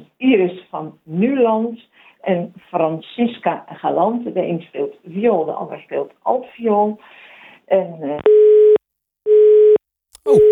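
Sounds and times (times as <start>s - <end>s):
speech: 0.2s - 8.6s, 10.2s - 10.5s
telephone busy tone after caller hung up: 8.2s - 10.5s.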